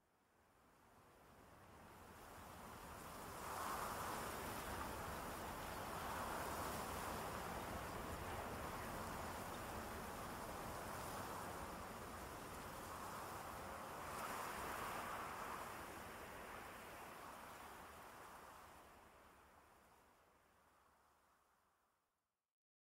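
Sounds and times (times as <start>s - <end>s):
wind in trees: 0.3s - 21.8s.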